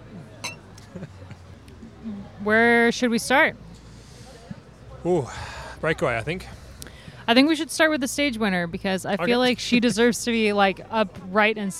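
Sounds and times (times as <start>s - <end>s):
glasses clinking in a toast: 0.4s - 0.6s
speech: 1.0s - 1.2s, 2.0s - 3.6s, 5.0s - 6.6s, 7.3s - 11.7s.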